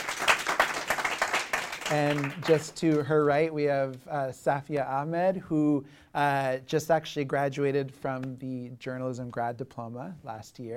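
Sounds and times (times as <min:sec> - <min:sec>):
room full of people applauding: 0:00.0 - 0:03.1
speech: 0:01.9 - 0:10.7.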